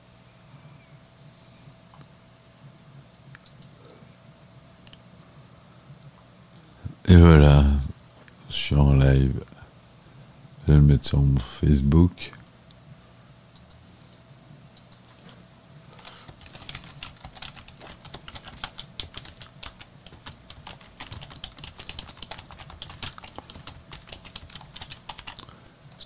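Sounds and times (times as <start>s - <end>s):
speech: 7.1s - 7.8s, 8.5s - 9.5s, 10.7s - 12.4s
rapid typing on a computer keyboard: 16.0s - 25.5s.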